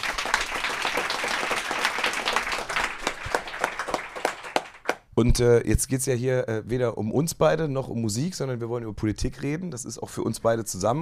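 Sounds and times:
room full of people clapping: 0:00.0 - 0:05.0
speech: 0:05.2 - 0:10.9.

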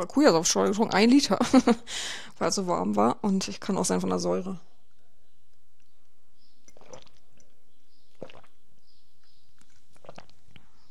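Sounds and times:
speech: 0:00.0 - 0:04.7
person swallowing an allergy tablet: 0:06.6 - 0:10.8.

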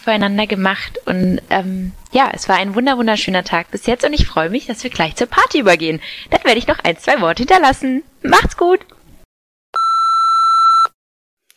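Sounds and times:
speech: 0:00.0 - 0:09.0
electronic beep tone from a wedding audio guestbook: 0:09.8 - 0:10.9.

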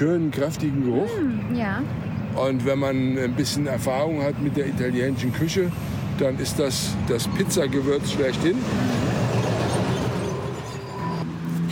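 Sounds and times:
speech: 0:00.0 - 0:09.2
train rumbling past with rattling wheels: 0:04.2 - 0:11.4.

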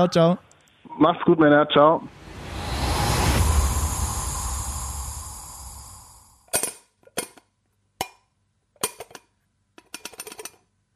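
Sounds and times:
speech: 0:00.0 - 0:00.4, 0:01.0 - 0:02.2
steady rushing noise: 0:02.0 - 0:06.5.

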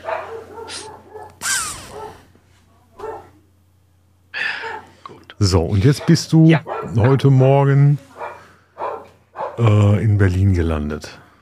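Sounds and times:
dogs barking in a room in the house: 0:00.0 - 0:02.3, 0:03.0 - 0:03.4, 0:04.6 - 0:05.0, 0:05.7 - 0:07.3, 0:08.1 - 0:09.7
speech: 0:05.4 - 0:08.1, 0:09.6 - 0:11.2.

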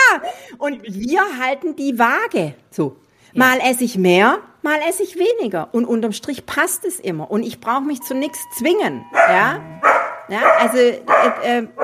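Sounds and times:
speech: 0:00.2 - 0:11.8
dog barking: 0:09.1 - 0:11.8.

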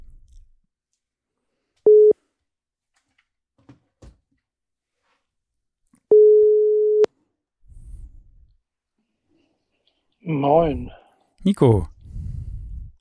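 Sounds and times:
telephone ringing tone while placing a call: 0:01.9 - 0:02.2, 0:06.1 - 0:07.1
speech: 0:10.3 - 0:11.9.

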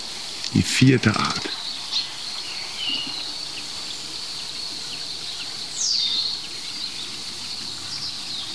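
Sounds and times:
faint birdsong in woodland: 0:00.0 - 0:08.5
steady shrill hum of insects in woodland: 0:00.0 - 0:08.5
very small woodpecker giving a high downward-sliding kiek call: 0:00.0 - 0:08.5
speech: 0:00.5 - 0:02.0.

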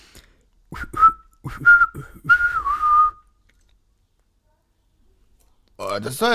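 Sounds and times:
person whistling imitating birdsong: 0:00.7 - 0:03.4
speech: 0:01.5 - 0:02.1, 0:06.0 - 0:06.3.

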